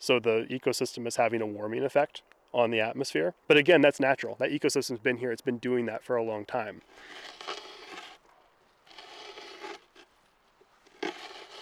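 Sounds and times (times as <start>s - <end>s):
speech: 0.0s - 7.6s
hand auger grinding and scraping into wet wetland muck: 6.6s - 11.6s.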